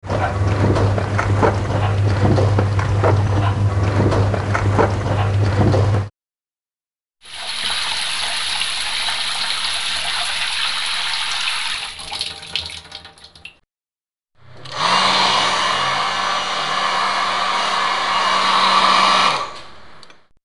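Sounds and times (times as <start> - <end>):
washing machine: 0.0 - 6.1, 7.2 - 13.6, 14.4 - 20.0
shower running: 7.2 - 13.6
hair dryer: 14.6 - 19.7.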